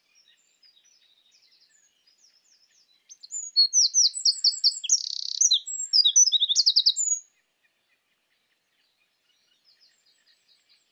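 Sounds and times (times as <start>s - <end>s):
Eurasian wren Troglodytes troglodytes song with high piercing notes, trills and buzzy rattle: 3.1s - 7.2s.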